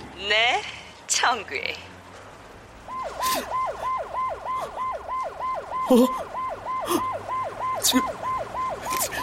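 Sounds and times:
speech: 0:00.2 - 0:01.9, 0:03.2 - 0:03.6, 0:05.9 - 0:06.3, 0:06.9 - 0:07.1, 0:07.8 - 0:08.2
police siren yelping with rapid pitch sweeps: 0:02.8 - 0:09.2.

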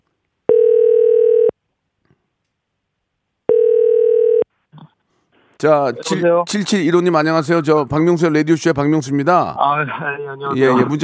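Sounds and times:
electronic telephone ringback tone as a radio host places a call: 0:00.5 - 0:01.5, 0:03.5 - 0:04.4
speech: 0:05.6 - 0:11.0.

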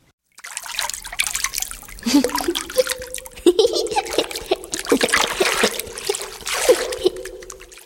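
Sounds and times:
water trickling and splashing on a hard surface in a small bathroom: 0:00.2 - 0:07.8
laughter: 0:02.0 - 0:07.8.

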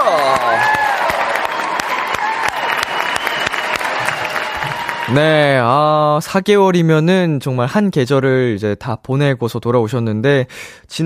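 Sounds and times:
crowd clapping loudly: 0:00.0 - 0:05.6
cheering voices and whoops: 0:00.0 - 0:05.7
speech: 0:05.1 - 0:11.0.

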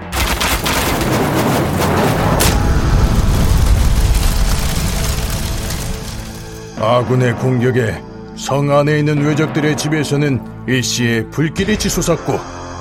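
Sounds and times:
many cannons firing at once: 0:00.0 - 0:06.8
speech: 0:06.8 - 0:12.6.

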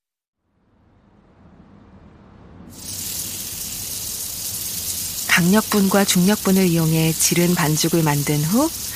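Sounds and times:
hotteok pancake filled with brown sugar cinnamon and nuts frying in hot oil: 0:02.7 - 0:08.9
speech: 0:05.4 - 0:08.9.

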